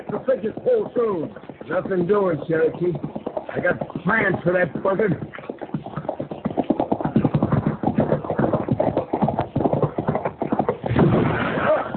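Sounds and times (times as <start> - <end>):
speech: 0.0 - 5.4
horse hooves clip-clopping: 0.0 - 11.9.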